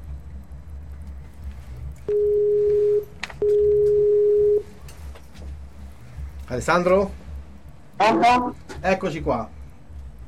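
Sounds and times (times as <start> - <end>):
faint low hum: 0.0 - 10.2
ringing tone on a telephone line while a call is being placed: 2.1 - 4.6
speech: 6.5 - 7.2, 8.0 - 9.6.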